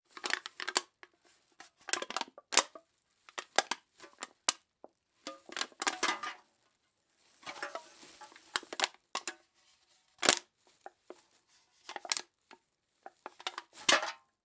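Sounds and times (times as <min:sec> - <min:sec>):
aluminum can crunching: 0:01.6 - 0:06.4, 0:07.4 - 0:09.4, 0:10.2 - 0:12.3, 0:13.0 - 0:14.2.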